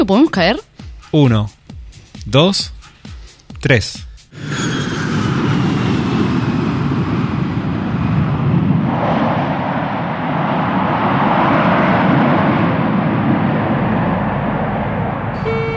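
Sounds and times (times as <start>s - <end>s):
speech: 0.0s - 1.6s, 2.3s - 2.8s, 3.6s - 4.9s
airliner landing and taxiing to a stop: 4.3s - 15.7s.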